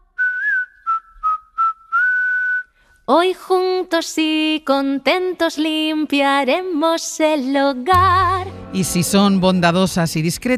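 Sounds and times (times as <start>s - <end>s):
whistled melody: 0.0s - 2.8s
speech: 3.1s - 10.5s.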